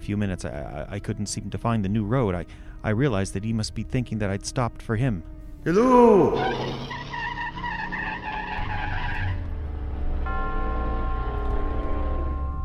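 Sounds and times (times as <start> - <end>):
speech: 0.1 - 6.9
tires squealing and skidding on the road surface: 5.9 - 12.4
car engine revving and straining while pulling back onto the road: 6.1 - 12.5.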